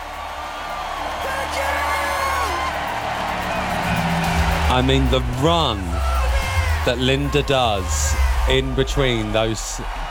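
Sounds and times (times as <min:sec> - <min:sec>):
large crowd roaring and cheering: 0:00.0 - 0:10.1
speech: 0:04.8 - 0:06.0, 0:06.8 - 0:10.1.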